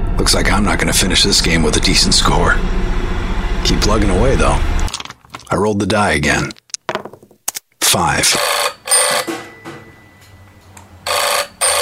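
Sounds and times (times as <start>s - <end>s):
speech: 0.2s - 3.0s, 3.6s - 4.8s, 5.5s - 6.6s, 7.9s - 8.5s
telephone bell ringing: 8.4s - 11.8s.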